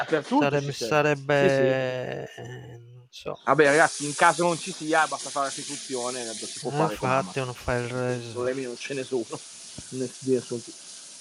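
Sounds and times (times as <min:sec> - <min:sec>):
speech: 0:00.0 - 0:10.8
water running: 0:03.5 - 0:11.1.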